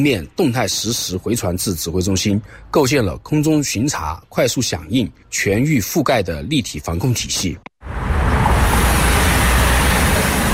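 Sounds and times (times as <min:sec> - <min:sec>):
speech: 0:00.0 - 0:08.1
heavy expressway traffic roar: 0:07.8 - 0:10.5.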